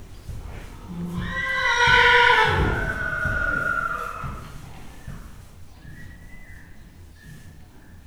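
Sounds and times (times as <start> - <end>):
horse neighing in Hortobágy National Park: 0.6 - 4.7.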